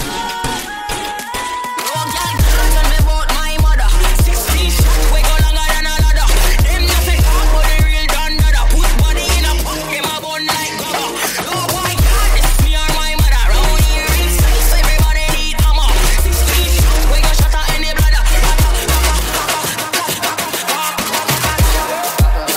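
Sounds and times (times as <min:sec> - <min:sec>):
remix ringtone: 0:00.0 - 0:22.5.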